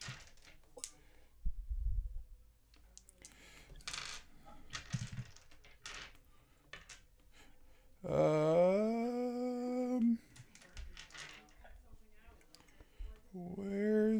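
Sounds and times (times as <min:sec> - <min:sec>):
small hard dice clattering in a bag: 0:04.7 - 0:07.0, 0:10.4 - 0:11.6
speech: 0:08.0 - 0:08.4
person humming a sustained note: 0:08.0 - 0:10.3, 0:13.4 - 0:14.1.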